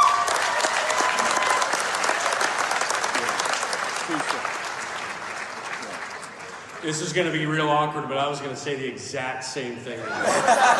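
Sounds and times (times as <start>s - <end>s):
audience applauding: 0.0s - 7.7s
speech: 6.8s - 10.7s
laughter: 10.0s - 10.7s.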